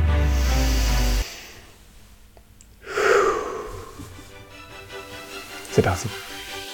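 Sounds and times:
deep breath in: 0.2 - 1.8, 2.8 - 4.3
speech: 5.8 - 6.3.

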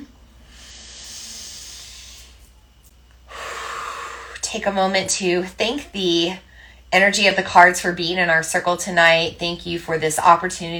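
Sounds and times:
deep breath: 0.4 - 2.5, 3.3 - 4.4, 6.4 - 6.9
speech: 4.5 - 10.7.

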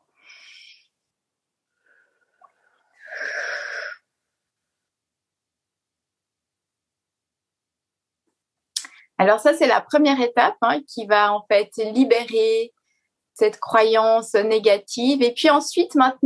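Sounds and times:
deep breath in and out: 0.1 - 1.0, 1.7 - 4.1
speech: 9.2 - 12.8, 13.4 - 16.2.

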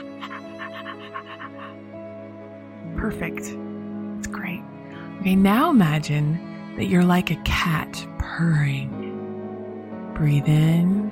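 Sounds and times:
person panting imitating a dog: 0.0 - 2.0
steady tonal background: 0.0 - 11.0
speech: 3.0 - 3.7, 5.2 - 9.0, 10.2 - 11.0.

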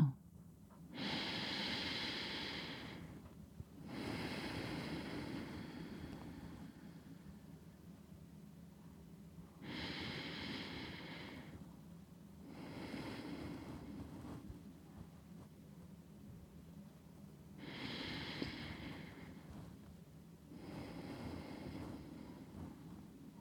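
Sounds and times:
slow deliberate breathing: 0.9 - 7.7, 9.6 - 11.7, 12.4 - 15.1, 17.6 - 23.3.

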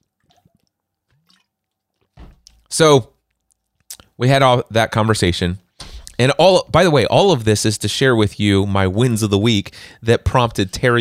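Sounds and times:
person drinking water: 0.0 - 4.2
wet sips and gulps: 0.0 - 4.2
speech: 2.7 - 3.1, 4.2 - 5.6, 6.2 - 10.9.

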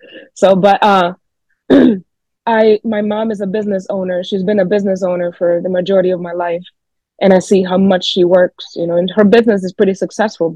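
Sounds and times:
speech: 0.4 - 10.5
person clearing throat: 1.7 - 2.0.

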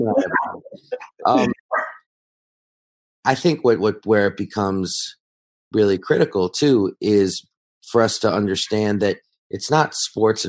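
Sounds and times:
speech: 0.0 - 1.6, 3.2 - 10.4
dog barking in short sharp yaps and whiny bursts: 1.7 - 2.0.

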